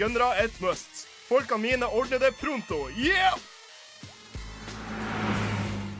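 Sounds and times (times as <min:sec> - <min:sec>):
speech: 0:00.0 - 0:03.5
car engine revving: 0:04.4 - 0:05.9.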